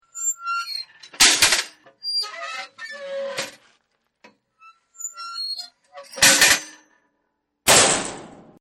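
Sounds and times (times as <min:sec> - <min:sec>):
squeaky gate: 0:00.0 - 0:03.7, 0:04.4 - 0:07.0.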